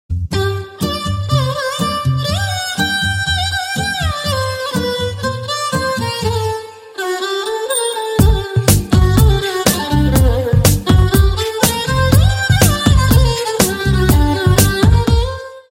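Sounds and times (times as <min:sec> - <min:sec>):
iPhone 8 violin song ringtone: 0:00.4 - 0:15.6.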